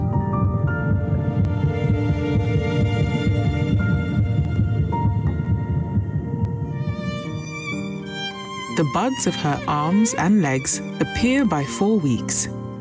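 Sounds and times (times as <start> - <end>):
fetal heartbeat: 0.0 - 10.1
speech: 8.8 - 12.6.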